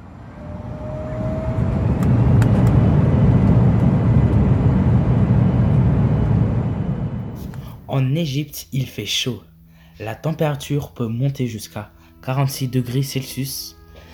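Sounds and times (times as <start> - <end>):
airplane taking off: 0.0 - 7.7
speech: 8.2 - 13.8.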